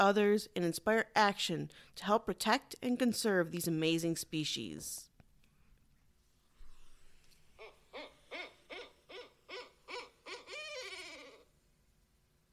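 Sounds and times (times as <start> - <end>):
speech: 0.0 - 5.1
owl hooting: 7.5 - 11.6.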